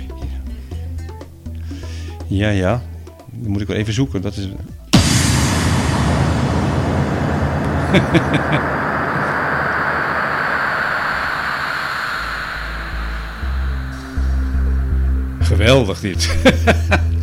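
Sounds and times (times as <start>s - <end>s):
speech: 2.3s - 4.7s, 7.9s - 8.8s, 15.6s - 17.0s
deep booming thuds: 5.0s - 15.6s
loud explosion: 5.0s - 16.6s
laughter: 16.2s - 17.1s.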